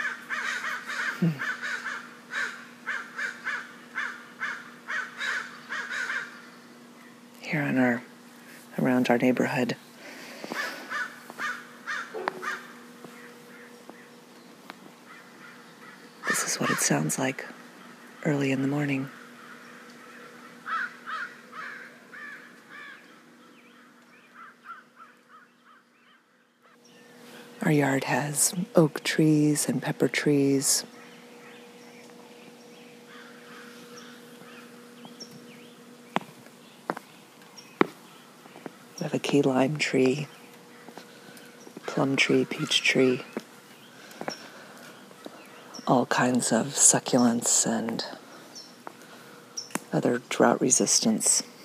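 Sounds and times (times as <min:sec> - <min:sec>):
crows cawing loudly in harsh bursts: 0:00.0 - 0:06.6, 0:10.2 - 0:14.0, 0:15.0 - 0:18.4, 0:19.1 - 0:26.8, 0:32.9 - 0:35.0, 0:38.4 - 0:39.0, 0:43.3 - 0:45.8
morning chorus of smaller birds: 0:00.0 - 0:51.6
speech: 0:01.2 - 0:01.5, 0:09.0 - 0:09.9, 0:16.9 - 0:17.6, 0:18.2 - 0:19.2, 0:27.7 - 0:31.0, 0:39.3 - 0:40.4, 0:42.0 - 0:43.3, 0:45.9 - 0:48.2, 0:49.9 - 0:51.5.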